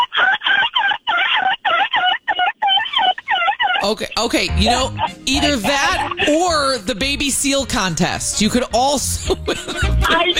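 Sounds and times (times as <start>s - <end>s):
person imitating seagull squawking cries over the phone: 0.0s - 6.4s
laughter: 0.0s - 10.3s
speech: 3.8s - 10.3s.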